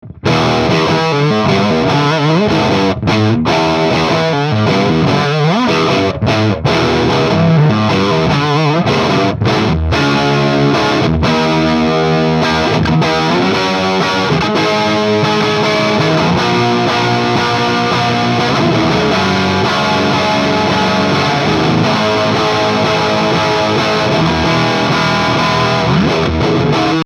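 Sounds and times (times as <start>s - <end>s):
guitar amplifier through Greenback speakers recorded with SM57 microphone: 0.0s - 27.0s.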